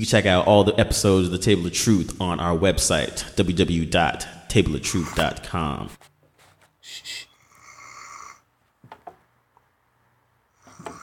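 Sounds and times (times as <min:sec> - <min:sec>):
speech: 0:00.0 - 0:06.1
man snoring: 0:07.3 - 0:08.5, 0:10.6 - 0:11.0.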